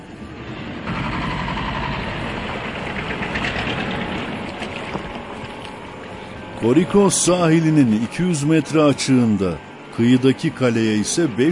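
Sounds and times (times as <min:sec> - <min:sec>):
tour boat motor droning off the Korykos coast near Mersin Turkey: 0:00.0 - 0:11.4
broad wash of water: 0:02.3 - 0:07.3
speech: 0:06.6 - 0:11.4.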